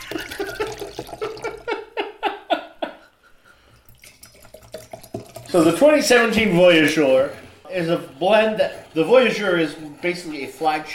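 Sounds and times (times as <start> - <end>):
red wine blend glugging from a bottle into a glass: 0.0 - 1.8, 3.7 - 9.4
speech: 5.5 - 10.9.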